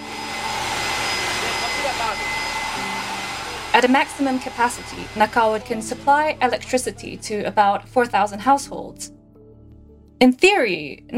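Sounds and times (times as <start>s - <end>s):
high-speed steam turbine roaring: 0.0s - 7.4s
faint tonal hum: 0.0s - 8.7s
speech: 3.8s - 9.2s, 10.2s - 11.1s.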